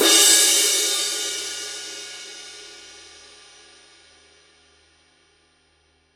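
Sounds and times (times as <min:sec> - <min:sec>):
Paiste Rude 20 thin crash cymbal edge hit: 0:00.0 - 0:03.6.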